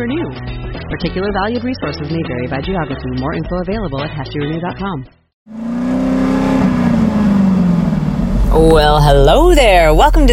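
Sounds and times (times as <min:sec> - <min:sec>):
speech: 0:00.0 - 0:05.7, 0:08.5 - 0:10.3
car engine revving: 0:05.5 - 0:10.3.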